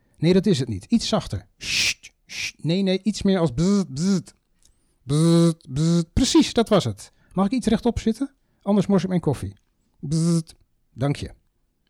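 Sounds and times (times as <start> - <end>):
speech: 0.2 - 4.4, 5.1 - 11.4
voice imitating electric lift chair motor with buzzing whirs: 5.1 - 6.2.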